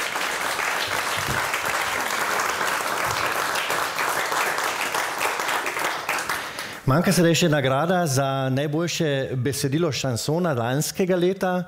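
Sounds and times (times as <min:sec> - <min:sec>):
audience applause for the first-prize winner of a competition: 0:00.0 - 0:06.8
speech: 0:06.9 - 0:11.6.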